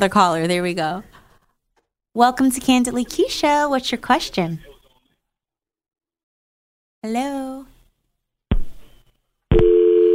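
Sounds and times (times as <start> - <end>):
speech: 0.0 - 1.1, 2.2 - 4.7, 7.0 - 7.7
telephone busy signal after a caller hung up on a call-in show: 9.6 - 10.1.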